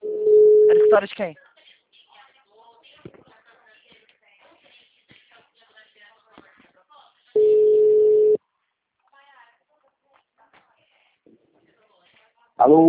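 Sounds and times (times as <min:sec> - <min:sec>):
telephone busy tone after a dropped call: 0:00.0 - 0:01.0, 0:07.4 - 0:08.4
speech: 0:00.9 - 0:01.5, 0:12.6 - 0:12.8.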